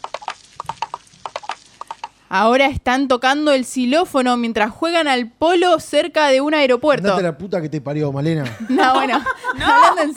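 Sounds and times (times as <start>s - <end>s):
ridden horse hooves clip-clopping at a trot in the rain: 0.0s - 2.2s
speech: 2.3s - 10.1s
laughter: 8.4s - 10.1s.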